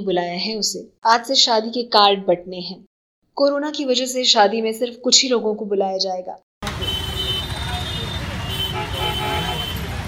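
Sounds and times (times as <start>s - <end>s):
speech: 0.0s - 6.5s
car horns honking in city traffic: 6.6s - 10.0s
engines rumbling: 6.6s - 10.0s
roar of dense city traffic: 6.6s - 10.0s.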